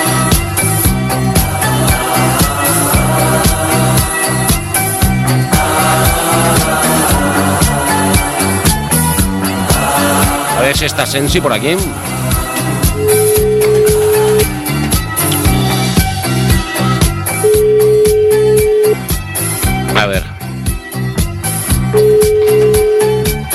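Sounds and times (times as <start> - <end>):
loud beat-driven music: 0.0 - 23.5
speech: 10.8 - 12.2
telephone ringback tone: 12.8 - 14.5, 17.4 - 19.1, 22.0 - 23.4.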